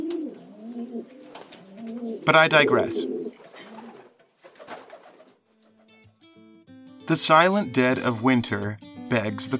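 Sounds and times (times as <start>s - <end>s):
pigeons cooing: 0.0s - 5.9s
speech: 2.3s - 3.1s, 7.1s - 9.5s
flurry of pigeons: 3.4s - 5.4s.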